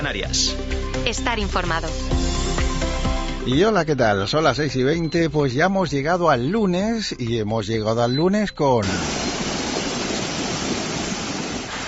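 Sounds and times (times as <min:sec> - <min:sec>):
speech: 0:00.0 - 0:02.3, 0:03.4 - 0:09.2
floodwater rushing down a ravine: 0:08.8 - 0:11.8.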